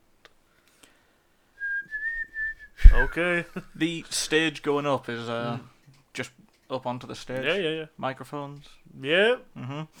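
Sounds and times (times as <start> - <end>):
person whistling a sustained tone: 1.6 - 3.2
speech: 2.8 - 9.9.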